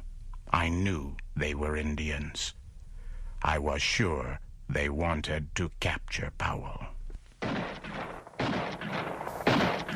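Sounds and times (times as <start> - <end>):
speech: 0.6 - 2.6, 3.4 - 6.9
gunshots: 7.4 - 9.9.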